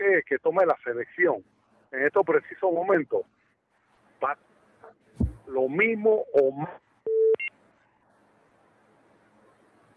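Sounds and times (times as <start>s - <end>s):
speech: 0.2s - 3.4s, 4.2s - 4.5s, 5.5s - 6.8s
quick high two-tone disconnect beep: 7.1s - 7.5s.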